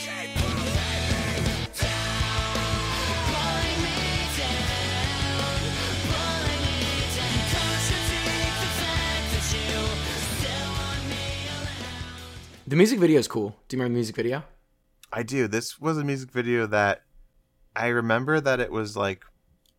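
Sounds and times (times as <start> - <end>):
heavy rock band with pounding drums and distorted guitars: 0.0 - 12.7
raw sustained scream in a heavy rock song: 2.0 - 4.3
speech: 12.7 - 17.1, 17.8 - 19.3.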